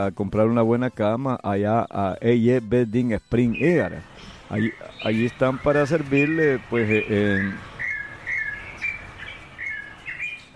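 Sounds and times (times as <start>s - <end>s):
speech: 0.0s - 7.7s
bird singing: 1.6s - 10.5s.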